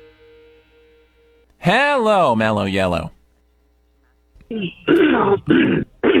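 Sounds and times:
speech: 1.6s - 3.2s, 4.5s - 5.9s
rough voiced throat clearing with growling rasps: 4.4s - 6.1s.

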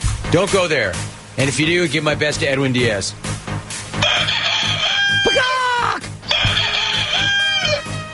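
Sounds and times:
speech: 0.3s - 3.4s
rooster crowing: 4.0s - 8.1s.

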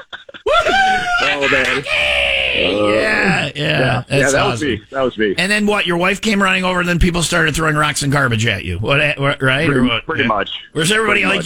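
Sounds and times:
laughter: 0.0s - 4.6s
man screaming in excitement after finding a key: 0.5s - 3.5s
speech: 1.4s - 11.4s.

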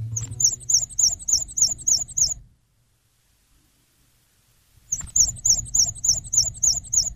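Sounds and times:
black-and-white warbler singing during spring migration: 0.0s - 2.4s, 4.9s - 7.1s
low rumbling background: 0.0s - 2.7s.

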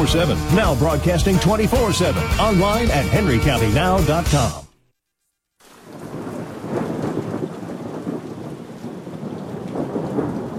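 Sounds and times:
speech: 0.0s - 4.6s
steady heavy rain in a thunderstorm: 5.6s - 10.5s
deep continuous rumble of thunder: 5.8s - 10.5s.

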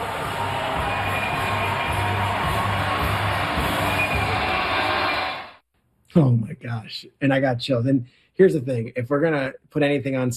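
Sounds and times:
packed theater crowd roaring and cheering wildly: 0.0s - 5.6s
shouts rising out of crowd noise: 0.0s - 5.6s
speech: 6.1s - 10.3s.

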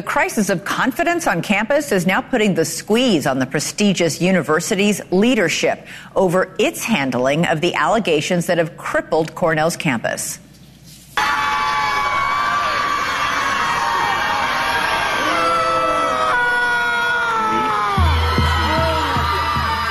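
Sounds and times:
speech: 0.0s - 10.5s
large crowd of protesters screaming and cheering: 11.2s - 19.8s.

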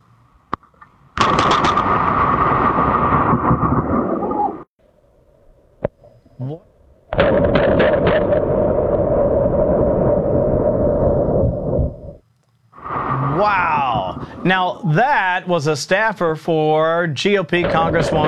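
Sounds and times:
deafening thunder crack from a very lightning strike: 1.2s - 4.7s, 7.1s - 12.2s, 12.8s - 15.5s
speech: 14.9s - 18.2s.

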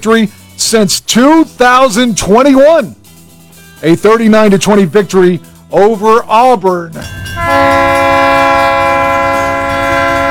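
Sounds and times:
speech: 0.0s - 3.0s, 3.8s - 7.8s
low rumble of rail noise: 7.0s - 10.3s
train horn blaring: 7.0s - 10.3s.

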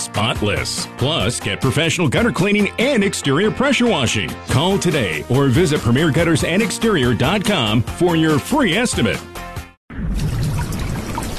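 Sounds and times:
speech: 0.1s - 9.5s
water leaking through a roof: 10.1s - 11.3s.

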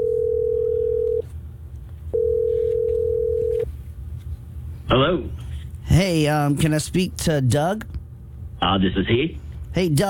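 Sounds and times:
steady telephone tone as a radio station places a call: 0.0s - 1.2s, 2.1s - 3.7s
low hum: 0.0s - 10.0s
speech: 4.9s - 8.0s, 8.6s - 10.0s.

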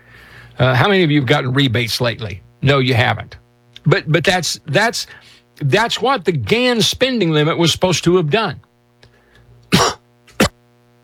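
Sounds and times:
faint steady hum: 0.0s - 11.0s
speech: 0.6s - 8.7s
person coughing: 9.7s - 10.6s.

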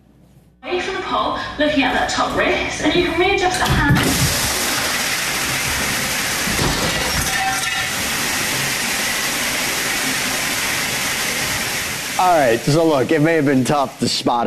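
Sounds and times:
speech: 0.6s - 4.4s, 12.2s - 14.4s
fire sprinkler spraying water into a Houston apartment: 4.0s - 14.4s.

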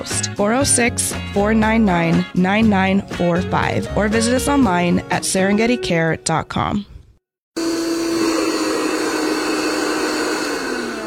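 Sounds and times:
speech: 0.0s - 6.9s
vacuum cleaner running: 7.6s - 11.0s.

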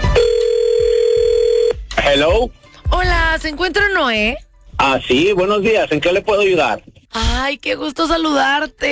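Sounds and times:
telephone keypad tones with soft clicks: 0.2s - 1.8s
speech: 2.2s - 8.9s.

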